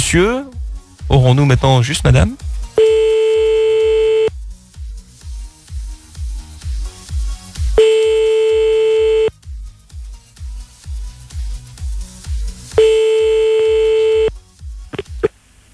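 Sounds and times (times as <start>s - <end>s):
steady rhythmic thumping beat: 0.0s - 15.3s
speech: 0.1s - 0.5s, 1.1s - 3.0s
telephone ringing tone on an outgoing call in France: 2.8s - 4.3s, 7.8s - 9.3s, 12.8s - 14.3s.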